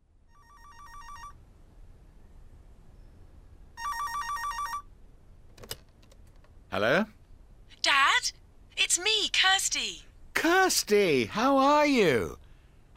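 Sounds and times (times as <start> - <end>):
telephone ringing in a warbling electronic trill for a long-distance call: 0.3 - 1.4, 3.8 - 4.9
speech: 6.7 - 7.2, 9.0 - 12.4.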